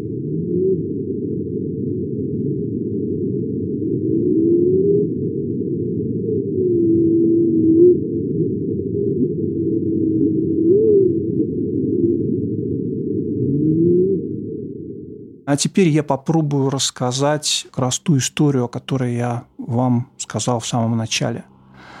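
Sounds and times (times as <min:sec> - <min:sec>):
whale song from whales living in Alaska: 0:00.0 - 0:15.4
speech: 0:15.5 - 0:21.9.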